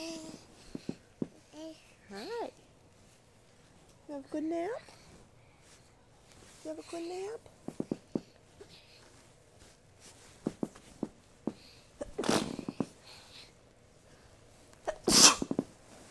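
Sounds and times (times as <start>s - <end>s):
soft movement sounds: 0.0s - 16.0s
speech: 4.2s - 5.0s, 6.6s - 7.8s
person sneezing: 12.0s - 12.9s, 14.9s - 15.6s.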